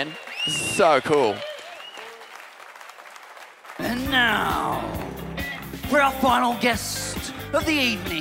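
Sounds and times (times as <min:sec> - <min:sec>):
speech: 0:00.0 - 0:01.5, 0:05.9 - 0:08.1
whistle from the audience: 0:00.0 - 0:02.5
audience clapping steadily: 0:00.0 - 0:06.8.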